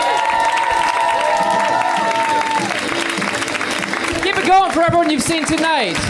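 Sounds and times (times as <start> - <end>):
whoops and sustained shouts: 0.0 - 2.8
audience applauding in a large room: 0.0 - 6.0
speech: 4.8 - 6.0.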